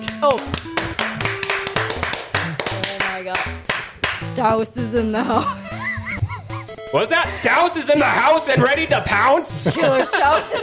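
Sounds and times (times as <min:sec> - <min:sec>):
speech: 0:00.2 - 0:00.7, 0:03.2 - 0:05.6, 0:06.9 - 0:10.6
crowd applause: 0:00.5 - 0:03.2
laughter: 0:05.2 - 0:10.6.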